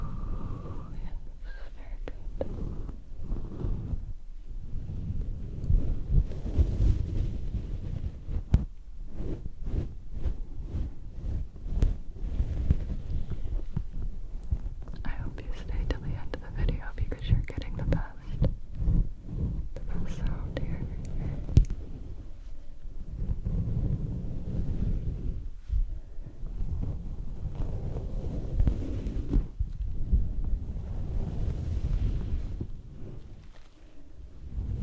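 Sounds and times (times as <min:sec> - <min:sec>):
fuzzy microphone covers cupped and rubbed: 0:00.0 - 0:34.8
sharp scratchy ticks and rustles: 0:04.9 - 0:24.8, 0:26.6 - 0:34.0.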